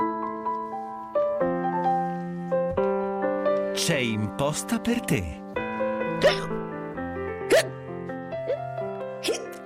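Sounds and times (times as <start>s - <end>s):
steady music bed: 0.0s - 9.6s
speech: 3.8s - 5.4s, 6.2s - 6.4s
hiccup sound effect: 6.2s - 6.6s, 7.5s - 7.8s, 9.2s - 9.6s.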